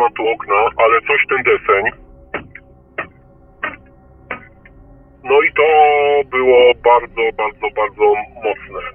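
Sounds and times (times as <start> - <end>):
speech: 0.0 - 2.0, 5.2 - 8.9
loud knocks on a hard surface inside a car: 2.3 - 4.6.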